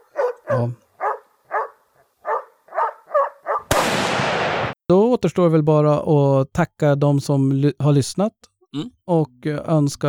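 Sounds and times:
dog barking: 0.0s - 3.7s
speech: 0.6s - 0.8s, 4.9s - 10.0s.

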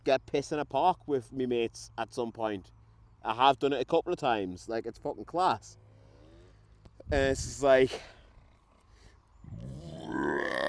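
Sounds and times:
speech: 0.0s - 5.8s, 7.1s - 8.2s
man burping: 9.6s - 10.6s.

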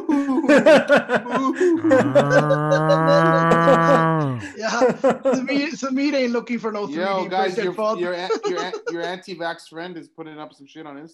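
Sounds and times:
laughter: 0.0s - 9.5s
speech: 0.2s - 3.4s, 4.9s - 11.1s
cow mooing: 2.0s - 4.4s.

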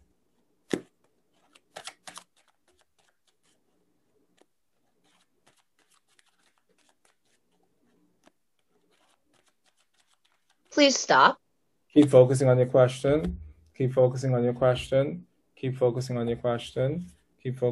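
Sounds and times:
tarot cards snapping: 0.6s - 3.6s, 4.3s - 7.4s, 8.2s - 10.6s
deck of tarot cards riffling: 0.6s - 10.7s
speech: 10.8s - 11.4s, 12.0s - 17.6s.

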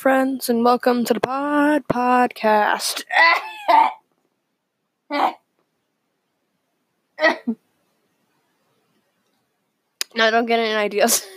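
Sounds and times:
speech: 0.0s - 4.0s, 5.1s - 5.4s, 7.2s - 7.6s, 10.2s - 11.3s
coughing to clear mucus from the throat: 3.2s - 4.0s.

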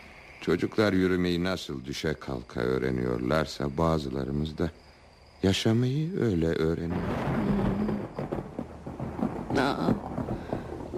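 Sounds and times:
speech: 0.4s - 7.8s
rain falling in a steady broadband hiss: 5.5s - 10.9s
brief louder rain splashes: 6.8s - 10.9s
deep low rumble: 6.9s - 10.9s.

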